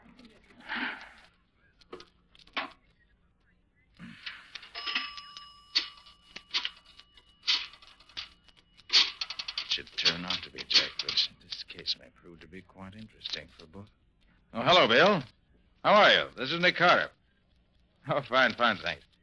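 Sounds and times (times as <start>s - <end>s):
tinny bell-like telephone ring: 4.6s - 8.1s
speech: 10.1s - 17.2s, 18.0s - 19.1s.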